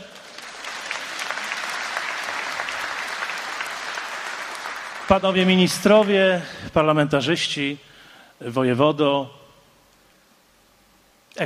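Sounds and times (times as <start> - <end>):
audience applause: 0.0 - 6.4
speech: 5.1 - 9.4.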